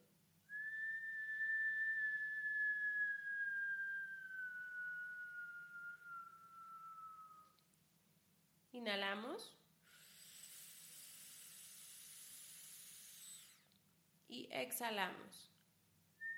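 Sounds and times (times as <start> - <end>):
long whistle blown on an exhaled breath during a breathing exercise: 0.5 - 7.6
speech: 8.8 - 9.6, 14.3 - 15.5.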